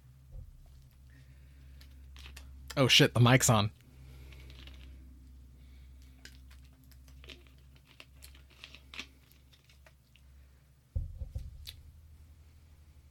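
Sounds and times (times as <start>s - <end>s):
crunchy chewing of a pink lemonade Kit Kat wafer chocolate bar: 0.8s - 2.8s, 4.0s - 10.4s
speech: 2.8s - 3.8s.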